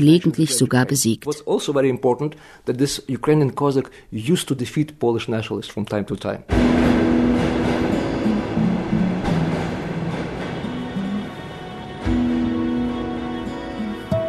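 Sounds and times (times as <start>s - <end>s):
speech: 0.0s - 7.1s
Soviet-era tram running through a city center in Lviv: 6.5s - 14.0s.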